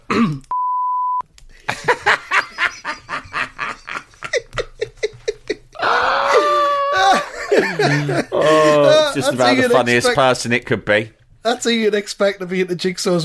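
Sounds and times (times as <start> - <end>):
electronic censor beep: 0.5 - 1.2
people laughing: 1.6 - 10.2
loud excited chuckle: 1.7 - 9.2
speech: 9.2 - 13.2.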